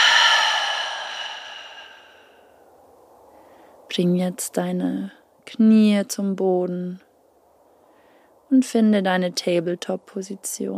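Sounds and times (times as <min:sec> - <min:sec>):
person exhaling deep breath through open mouth in a yoga sequence: 0:00.0 - 0:02.4
speech: 0:04.0 - 0:07.1, 0:08.5 - 0:10.7.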